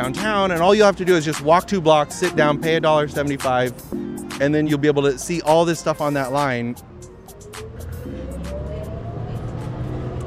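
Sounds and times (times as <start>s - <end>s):
speech: 0.0s - 6.9s
city bus engine accelerating: 6.8s - 10.2s.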